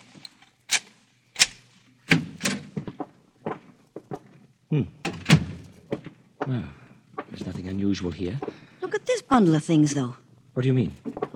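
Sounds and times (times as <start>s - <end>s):
hotel room door clunking and thumping as it is opened: 2.1s - 4.4s, 5.0s - 6.6s
speech: 4.7s - 5.0s, 6.5s - 6.8s, 7.7s - 8.6s, 9.3s - 11.0s.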